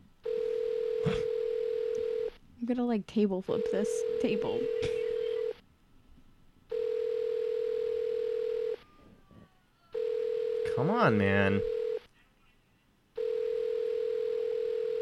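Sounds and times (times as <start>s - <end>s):
telephone ringback tone: 0.2s - 2.3s, 3.5s - 5.6s, 6.7s - 8.8s, 10.0s - 12.0s, 13.2s - 14.9s
speech: 2.7s - 5.0s, 10.8s - 11.7s.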